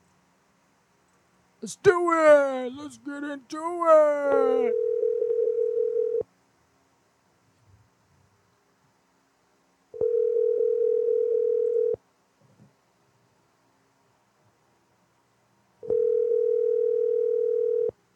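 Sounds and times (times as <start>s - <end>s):
speech: 1.6s - 4.9s
ringback tone of a telephone call being placed: 4.4s - 6.2s, 10.0s - 12.0s, 15.9s - 17.9s.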